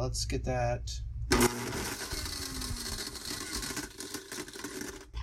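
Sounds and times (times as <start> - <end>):
speech: 0.1 - 2.2
blender chopping ice for frozen drink: 1.3 - 5.2.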